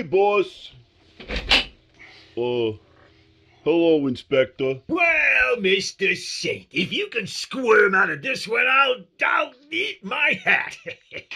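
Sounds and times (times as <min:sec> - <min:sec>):
speech: 0:00.0 - 0:01.6, 0:02.4 - 0:02.9, 0:03.6 - 0:11.3
door rattling and scraping open: 0:01.2 - 0:01.8
laughter: 0:10.0 - 0:11.3.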